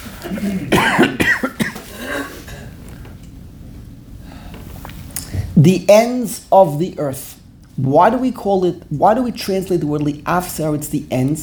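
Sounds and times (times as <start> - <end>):
harsh coughs: 0.2 - 2.7
throat-clearing rasp: 0.2 - 2.7
speech: 0.3 - 1.2, 5.6 - 11.4.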